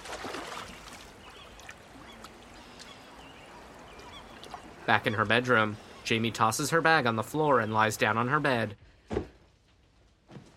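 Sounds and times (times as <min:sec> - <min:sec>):
Walkman splashing into water below a bridge: 0:00.0 - 0:01.1
outdoor waterside ambience: 0:00.0 - 0:08.8
faint bird calls: 0:00.7 - 0:04.9
speech: 0:04.9 - 0:08.8.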